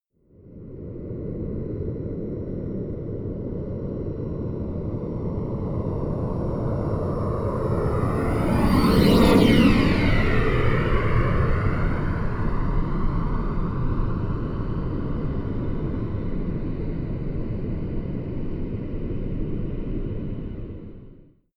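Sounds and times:
small private Honda plane flying by right to left close: 0:01.5 - 0:21.1.

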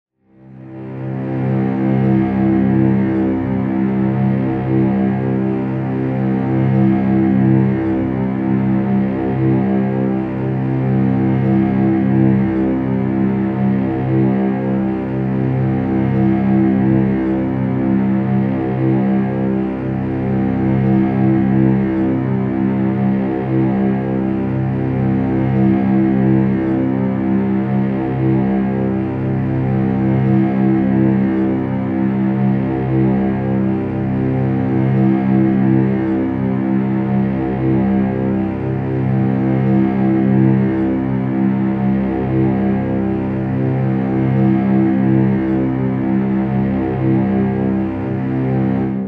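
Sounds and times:
dark string tone: 0:00.4 - 0:49.0.

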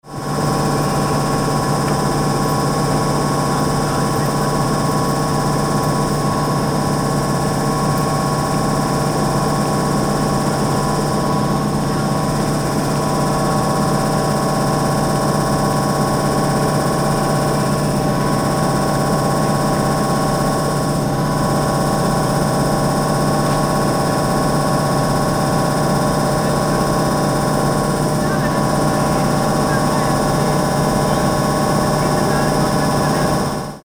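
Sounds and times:
train engine idling: 0:00.0 - 0:33.8.

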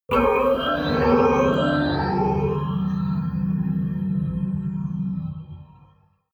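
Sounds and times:
hydraulic howl: 0:00.1 - 0:05.2.

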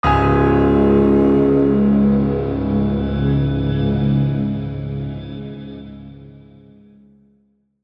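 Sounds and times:
sad piano logo jingle: 0:00.0 - 0:06.5.

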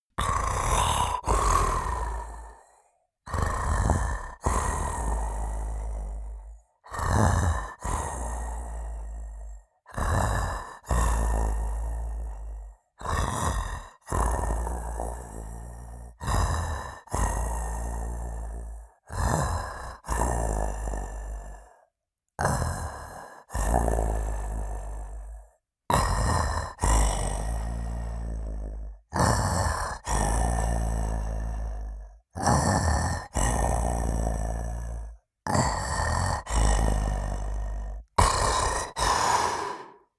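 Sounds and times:
monster snore: 0:00.2 - 0:40.1.

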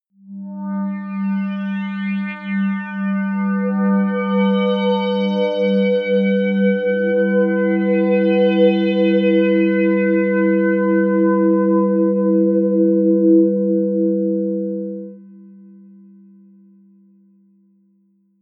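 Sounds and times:
resonant synth pad fifth: 0:00.5 - 0:15.2.

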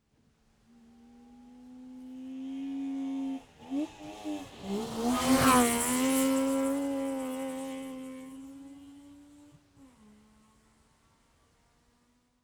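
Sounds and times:
Saab 92 car passing by outside: 0:02.1 - 0:10.8.

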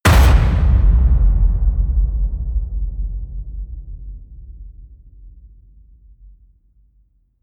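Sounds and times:
short metal crash: 0:00.0 - 0:03.6.

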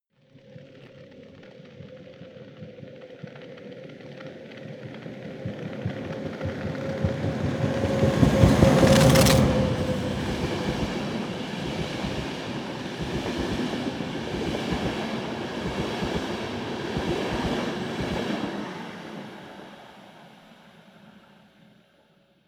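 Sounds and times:
train passing by: 0:04.9 - 0:21.2
trash flap flapping: 0:06.6 - 0:10.9.

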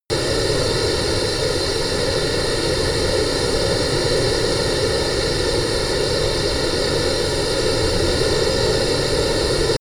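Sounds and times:
Honda small private turbine plane idling: 0:00.1 - 0:09.7.

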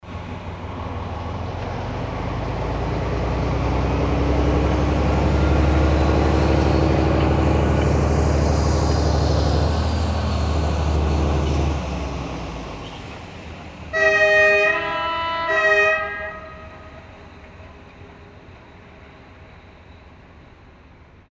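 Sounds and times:
train passing: 0:00.0 - 0:21.3
train horn: 0:13.9 - 0:17.3.

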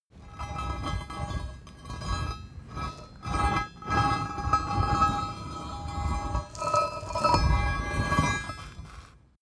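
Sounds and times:
long metal scrape: 0:00.2 - 0:09.2.

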